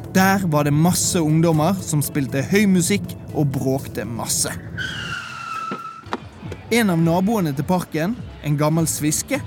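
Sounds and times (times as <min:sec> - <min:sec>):
speech: 0:00.2 - 0:05.1, 0:06.7 - 0:09.4
car braking to a stop with tire squeal: 0:04.8 - 0:06.2.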